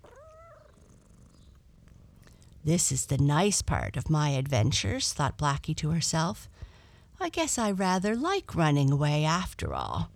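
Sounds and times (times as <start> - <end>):
domestic cat rising chirp-like meow: 0.0 - 0.9
domestic cat purring: 0.0 - 2.7
speech: 2.6 - 10.1.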